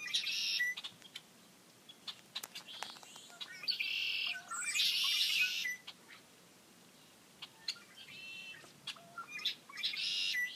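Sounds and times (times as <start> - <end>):
red-winged blackbirds giving buzzy rasping trills and sharp chips: 0.0 - 1.2, 1.9 - 6.0, 7.4 - 10.5.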